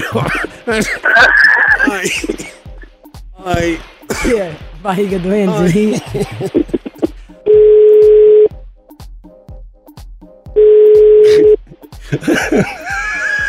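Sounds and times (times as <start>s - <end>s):
people laughing: 0.0s - 2.9s, 5.4s - 7.3s, 11.3s - 13.4s
speech: 0.1s - 2.6s, 3.4s - 6.7s
telephone call ringing unanswered: 7.5s - 8.5s, 10.6s - 11.6s.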